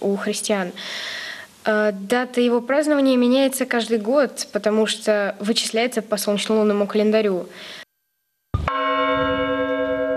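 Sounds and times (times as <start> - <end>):
speech: 0.0 - 7.8
church bell ringing for Easter in Russia: 8.6 - 10.1.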